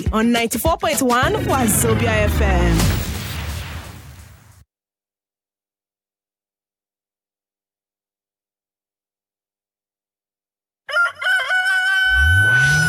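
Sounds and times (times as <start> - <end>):
speech: 0.1 - 3.1
low rumble: 1.2 - 4.4
brief burst of noise: 1.2 - 4.6
rooster crowing loudly: 10.9 - 12.8.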